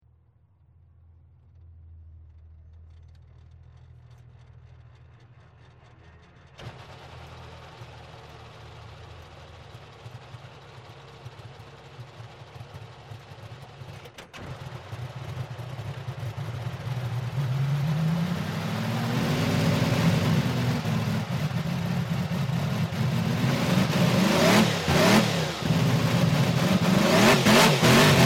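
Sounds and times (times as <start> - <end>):
BRM race car in-car engine: 0.4 - 28.2.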